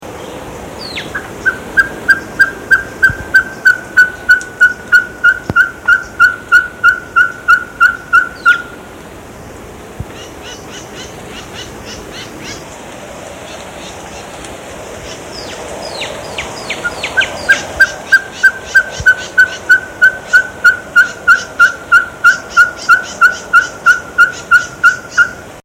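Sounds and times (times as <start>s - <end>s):
ferruginous pygmy owl song: 0.8s - 8.9s, 15.2s - 25.6s.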